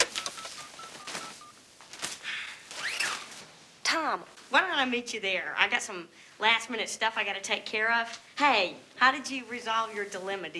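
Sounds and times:
short electronic phone-dialing beeps: 0.0 - 1.6
speech: 4.1 - 10.5.

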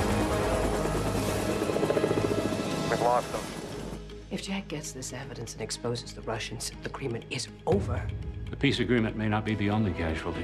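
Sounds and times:
military helicopters in pursuit with rotor and engine roar: 0.0 - 4.1
speech: 3.1 - 3.4, 4.3 - 10.4.

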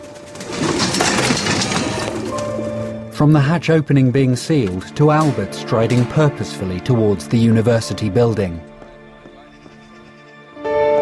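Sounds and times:
pigeons dropping from a cage into a glass chamber, wingbeats and rustling: 0.0 - 2.7
speech: 3.2 - 8.7.

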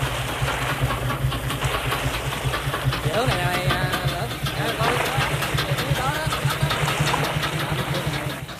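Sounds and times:
boat engine running on a river: 0.0 - 8.5
people talking: 2.8 - 8.5.

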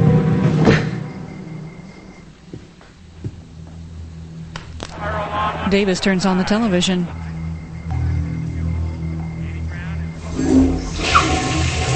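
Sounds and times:
low room hum: 0.0 - 11.9
laughter: 4.9 - 10.1
speech: 5.7 - 7.2
toilet flushing: 10.2 - 11.9
sink faucet running: 10.9 - 11.9.

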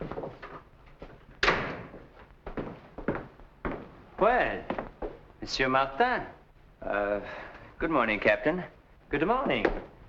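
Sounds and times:
villa front door opening and closing with a loud thud: 1.4 - 2.0
speech: 4.2 - 4.8, 5.4 - 9.8.

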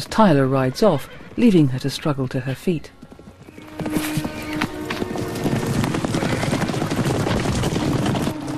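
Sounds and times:
speech: 0.0 - 3.0
herd of mustang horses galloping on dry shingly riverbed: 0.0 - 8.5
faint horse whinny: 3.5 - 7.2.

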